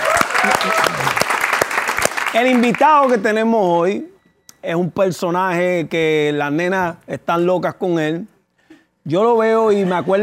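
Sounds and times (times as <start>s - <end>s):
studio audience applause: 0.0s - 3.2s
speech: 2.3s - 8.3s, 9.0s - 10.2s.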